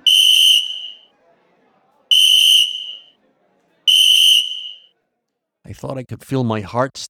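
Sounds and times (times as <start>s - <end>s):
shrill referee's whistle blown hard: 0.0s - 1.0s, 2.1s - 3.1s, 3.9s - 4.8s
speech: 5.7s - 7.0s.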